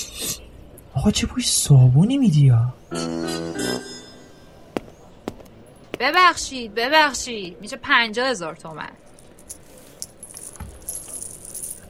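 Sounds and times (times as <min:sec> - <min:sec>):
speech: 0:01.0 - 0:03.8, 0:06.0 - 0:09.0
old coins spilling and jingling: 0:09.1 - 0:11.8.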